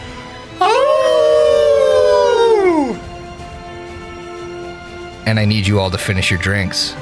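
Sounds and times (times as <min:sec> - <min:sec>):
pack of wolves howling in the woods: 0:00.6 - 0:03.1
speech: 0:05.3 - 0:07.0.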